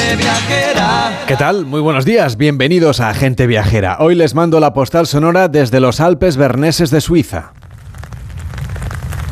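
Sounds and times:
speech: 0.1 - 7.6
light rain pattering in an alpine village: 7.1 - 9.2
low outdoor rumble: 7.4 - 9.2.

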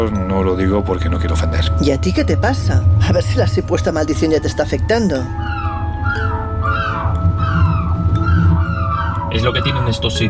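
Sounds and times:
speech: 0.0 - 6.3, 9.4 - 10.2
low rumble: 0.0 - 10.2
gull squawking: 3.1 - 10.2.

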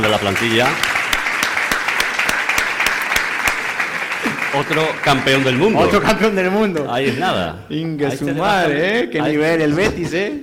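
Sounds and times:
audience applause: 0.0 - 6.4
speech: 0.1 - 1.0, 4.5 - 10.4.

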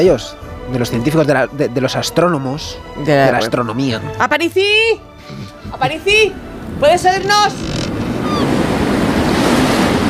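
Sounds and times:
speech: 0.0 - 7.7
sea waves and surf: 5.2 - 10.0.

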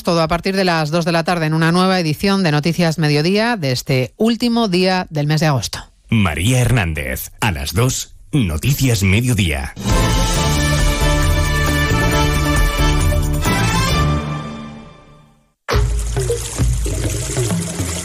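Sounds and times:
speech: 0.0 - 10.5
music: 9.8 - 18.0
water running from a tap: 15.8 - 18.0.

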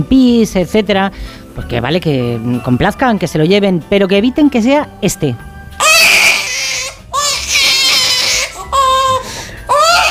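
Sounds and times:
speech: 0.0 - 5.5
toy baby doll crying: 5.8 - 10.0.

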